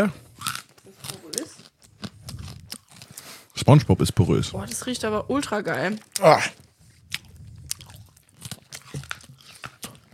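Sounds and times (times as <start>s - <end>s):
speech: 0.0s - 0.2s, 3.7s - 6.6s
chewing and biting soft sugary candy: 0.2s - 3.7s, 5.7s - 10.1s.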